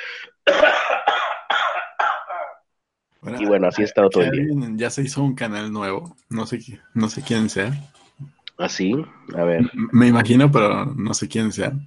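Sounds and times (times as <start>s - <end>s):
person with a bad flu coughing harshly outside the house: 0.4s - 2.6s
speech: 3.2s - 11.8s.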